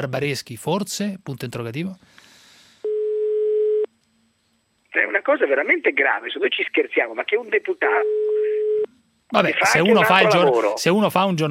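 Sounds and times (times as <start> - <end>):
speech: 0.0 - 2.3, 5.0 - 8.3, 9.3 - 11.4
iPhone ringing tone: 2.9 - 3.9, 7.9 - 8.9.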